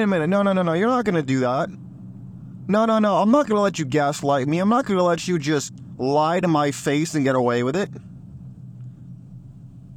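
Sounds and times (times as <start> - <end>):
speech: 0.0 - 1.8, 2.7 - 8.1
low-frequency road rumble inside a moving car: 0.0 - 9.9.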